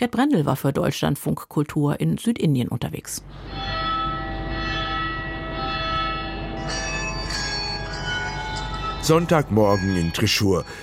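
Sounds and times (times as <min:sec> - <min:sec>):
speech: 0:00.0 - 0:03.9, 0:09.1 - 0:10.8
church bells ringing in a steady peal: 0:03.3 - 0:10.8.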